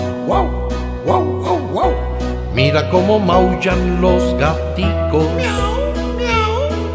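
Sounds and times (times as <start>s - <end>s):
dogs barking: 0.2s - 2.2s
speech: 0.3s - 5.8s.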